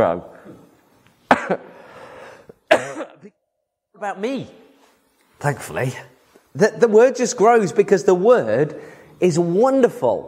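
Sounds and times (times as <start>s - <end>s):
speech: 0.0s - 0.3s, 1.5s - 1.7s, 4.0s - 4.6s, 5.4s - 10.2s
harsh coughs: 1.3s - 1.8s, 2.5s - 3.4s
raspy drawn-out breath: 1.7s - 2.6s.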